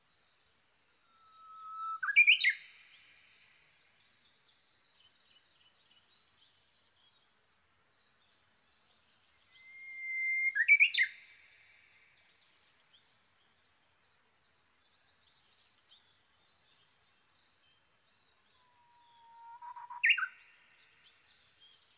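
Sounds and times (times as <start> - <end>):
faint chirps of other birds: 0.0 - 21.9
Japanese bush warbler song, long whistle sliding into warbled flourish: 1.1 - 2.8, 9.5 - 11.2, 19.2 - 21.8.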